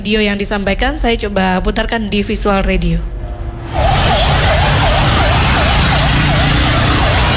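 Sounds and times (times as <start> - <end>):
speech: 0.0 - 3.1
loud rumbling traffic noise: 0.0 - 7.3
fire truck emergency siren wailing: 3.3 - 7.3.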